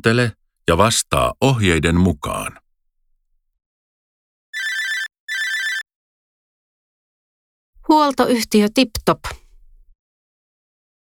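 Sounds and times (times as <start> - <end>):
speech: 0.0 - 2.6, 7.9 - 9.4
telephone ringing while calling a maintenance company: 4.6 - 5.8.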